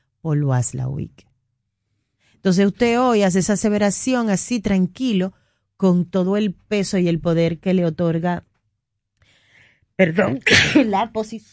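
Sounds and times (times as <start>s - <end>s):
speech: 0.2s - 1.3s, 2.4s - 8.5s, 10.0s - 11.5s
person sneezing loudly: 10.3s - 10.9s.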